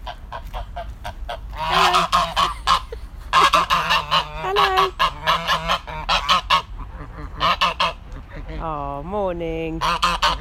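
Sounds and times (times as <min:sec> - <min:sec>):
geese kept next to chickens honking: 0:00.0 - 0:08.8, 0:09.7 - 0:10.3
short rhythmic clucks: 0:01.6 - 0:05.5.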